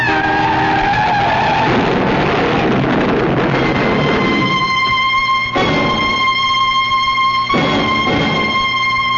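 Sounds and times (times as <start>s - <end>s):
truck tires screeching in a skid on the road: 0.0s - 9.1s.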